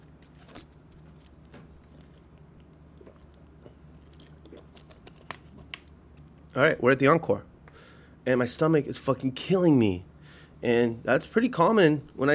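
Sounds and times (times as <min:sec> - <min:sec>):
person sipping and swallowing water: 0:01.2 - 0:05.1
speech: 0:06.6 - 0:07.5, 0:08.2 - 0:12.3.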